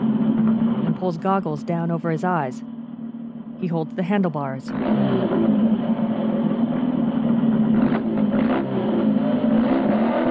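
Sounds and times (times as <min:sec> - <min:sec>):
speech: 0:01.0 - 0:02.7, 0:03.6 - 0:05.6
motorcycle engine revving with a throaty drone: 0:04.7 - 0:10.2.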